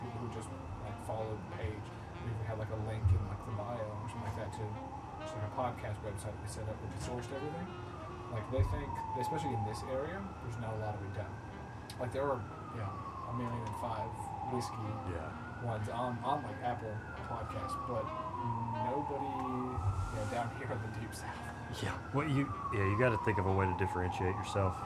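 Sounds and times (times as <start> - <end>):
wailing siren outdoors in Birmingham: 0.0 - 24.8
speech: 1.1 - 24.8.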